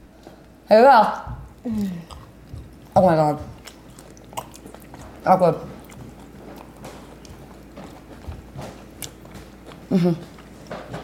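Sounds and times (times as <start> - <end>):
biting and chewing crunchy homemade pizza crust: 0.1 - 11.0
speech: 0.7 - 2.2, 3.0 - 3.6, 5.2 - 5.7, 9.9 - 10.3
brief loud mouthy sound: 1.6 - 2.3.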